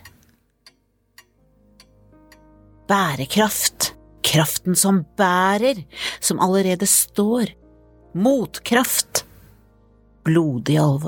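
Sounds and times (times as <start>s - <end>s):
clock ticking: 0.0s - 4.0s
low sustained musical drone: 1.0s - 11.0s
speech: 2.9s - 9.2s, 10.3s - 11.0s.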